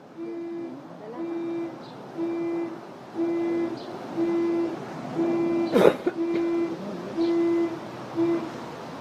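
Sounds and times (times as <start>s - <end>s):
car alarm blaring outside in short low honking beeps: 0.1s - 8.6s.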